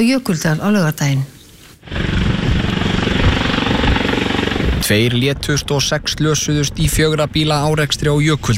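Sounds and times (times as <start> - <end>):
speech: 0.0 - 2.1, 4.9 - 8.5
Icelandic Coast Guard helicopter flying: 1.8 - 8.5.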